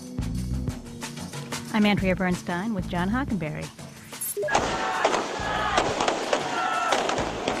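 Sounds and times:
speech: 1.8s - 3.8s
strings of firecrackers popping outdoors in celebration: 4.5s - 7.5s.

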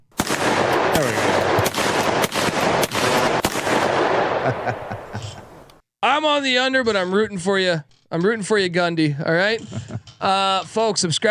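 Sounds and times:
gunfire bursts: 0.1s - 5.6s
laughter: 4.3s - 5.6s, 8.9s - 10.9s
speech: 6.2s - 11.2s.

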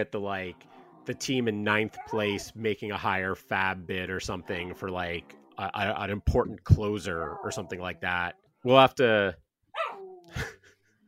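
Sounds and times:
speech: 0.0s - 9.4s
dog barking: 9.8s - 10.1s.

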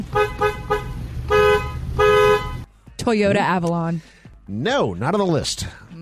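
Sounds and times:
car horn honking: 0.0s - 2.7s
speech: 3.1s - 5.8s.

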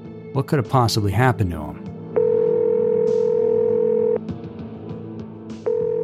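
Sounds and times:
speech: 0.4s - 1.9s
telephone ringing tone on the line: 2.2s - 4.2s, 5.7s - 6.0s.

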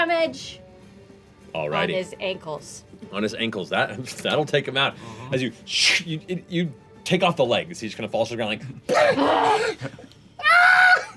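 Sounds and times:
speech: 0.0s - 0.6s, 1.5s - 10.1s
voice imitating a wounded creature screaming in pain: 9.0s - 9.8s, 10.4s - 11.1s.

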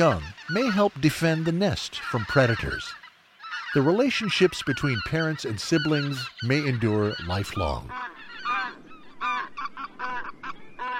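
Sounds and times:
speech: 0.0s - 3.0s, 3.7s - 8.1s
white-fronted geese calling: 0.0s - 10.9s.

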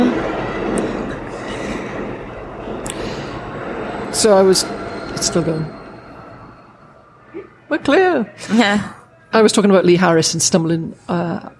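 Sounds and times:
high-pitched squeals from train wheels: 0.0s - 8.4s
train rumbling past: 0.0s - 11.1s
speech: 4.2s - 5.8s, 7.9s - 11.5s.

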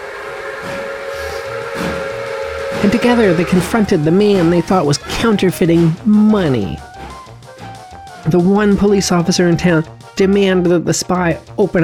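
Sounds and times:
steam train whistle at the station: 0.0s - 5.0s
steam train chuffing at the station: 0.0s - 6.0s
speech: 2.8s - 6.9s, 8.2s - 11.8s.

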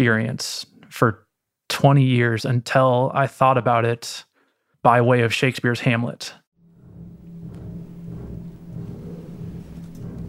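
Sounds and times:
speech: 0.0s - 1.2s, 1.8s - 6.4s
low bass chord from double basses and piano: 6.6s - 10.2s.

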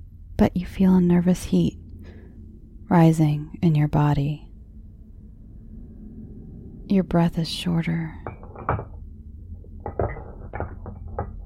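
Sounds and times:
low steady rumble: 0.0s - 11.4s
speech: 0.4s - 1.8s, 2.9s - 4.4s, 6.9s - 8.9s
dishes in a kitchen clinking and rattling: 8.2s - 11.4s.

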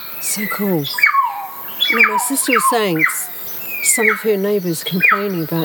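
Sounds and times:
kaka parrot calls with grating squawks and whistled notes: 0.3s - 5.6s
speech: 0.6s - 1.1s, 2.3s - 3.2s, 4.0s - 5.6s.

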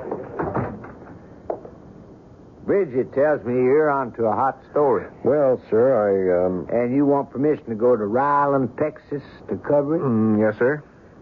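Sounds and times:
door closing: 0.0s - 1.2s
speech: 2.7s - 10.9s.

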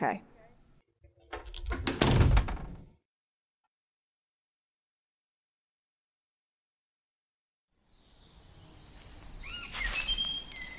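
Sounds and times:
speech: 0.0s - 0.3s
door pushed shut with a dull thud: 1.2s - 3.0s.

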